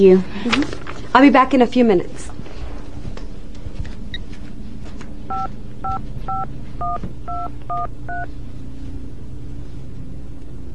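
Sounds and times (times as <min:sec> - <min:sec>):
speech: 0:00.0 - 0:02.3, 0:05.4 - 0:08.5
low steady hum: 0:00.0 - 0:10.7
touch-tone phone keypad beeps: 0:05.3 - 0:08.3.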